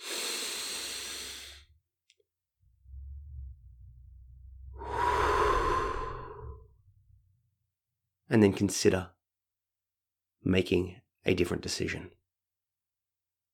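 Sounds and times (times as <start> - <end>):
deep slow breath in through the nose and out through the mouth: 0.0 - 1.8, 2.6 - 7.4
low steady hum: 2.6 - 7.5
speech: 8.3 - 9.2, 10.4 - 12.2.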